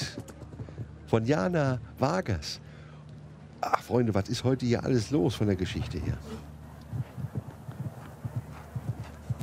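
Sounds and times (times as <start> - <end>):
mare's hooves clip-clopping on a hard surface at a show-jumping competition: 0.0 - 1.1, 6.5 - 9.4
speech: 1.1 - 2.7, 3.6 - 6.5.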